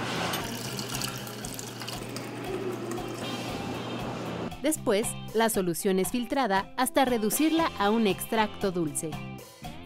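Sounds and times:
water pouring and splashing into shredded agave piñas: 0.2 - 3.5
speech: 4.7 - 9.3.

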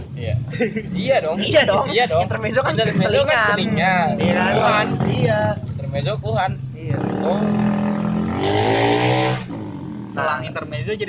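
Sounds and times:
speech: 0.2 - 7.8, 8.4 - 9.5, 10.1 - 11.0
laughter: 0.5 - 1.0
loud motorcycle engine revving as it passes by: 2.6 - 11.0.

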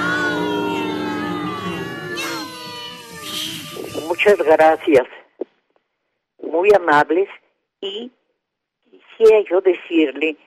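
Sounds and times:
cat meowing and yowling: 0.1 - 4.8
speech: 4.1 - 5.2, 6.6 - 8.2, 9.2 - 10.4.

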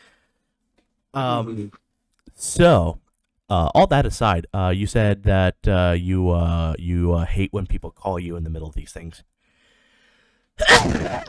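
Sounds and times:
speech: 1.2 - 9.4, 10.6 - 11.2
person sneezing: 10.6 - 11.2.

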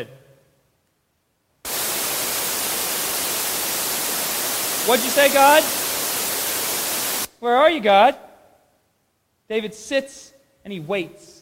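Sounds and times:
loud white-noise static hiss: 0.8 - 7.5
speech: 4.9 - 5.8, 7.4 - 8.2, 9.5 - 11.4.

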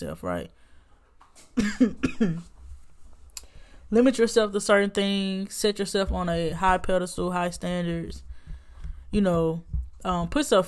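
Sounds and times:
speech: 0.0 - 0.6, 1.6 - 2.5, 3.9 - 8.3, 9.1 - 10.6
harsh raspy coughs: 1.6 - 2.5.

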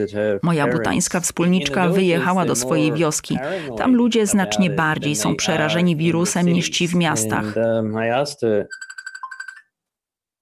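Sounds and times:
speech: 0.0 - 8.8
phone ringing with an incoming call: 8.7 - 9.7.

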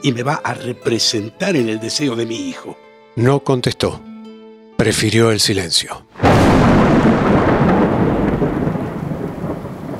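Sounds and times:
speech: 0.0 - 4.1, 4.8 - 7.8
heavy rain: 6.2 - 9.9
loud crash of thunder rolling into a deep rumble: 6.2 - 9.9.

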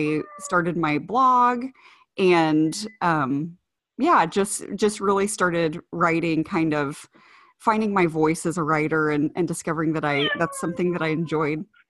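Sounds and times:
cat meowing loudly: 0.0 - 0.8, 10.1 - 11.4
speech: 0.0 - 11.8.

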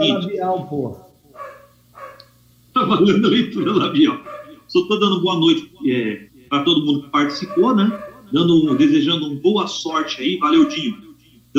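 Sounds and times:
speech: 0.0 - 1.0, 2.8 - 11.5
low steady hum: 0.0 - 11.5
dog barking: 1.3 - 2.3, 3.6 - 4.7, 7.2 - 9.2, 10.3 - 11.0.

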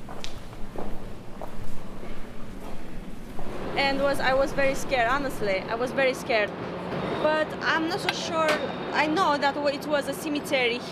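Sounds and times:
footsteps walking at a slow steady pace: 0.0 - 5.7
low hum: 0.0 - 10.9
speech: 3.8 - 10.9.

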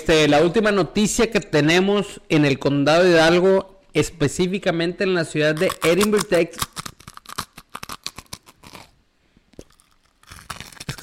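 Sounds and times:
speech: 0.0 - 6.7
pet crunching on pork rinds: 5.6 - 8.9, 9.6 - 11.0.

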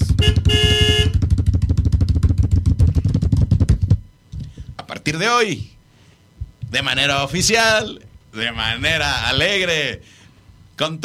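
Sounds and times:
small van horn honking: 0.0 - 1.3
steady rapid pulsing rumble: 0.0 - 10.8
speech: 5.1 - 5.7, 6.7 - 10.2, 10.8 - 11.0.

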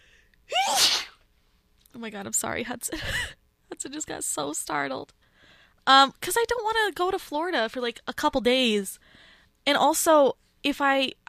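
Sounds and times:
loud human sneeze: 0.5 - 1.2
speech: 2.0 - 11.2.

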